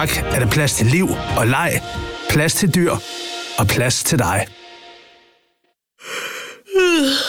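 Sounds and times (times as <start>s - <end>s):
speech: 0.0s - 4.6s, 6.8s - 7.2s
person yawning: 6.0s - 7.2s.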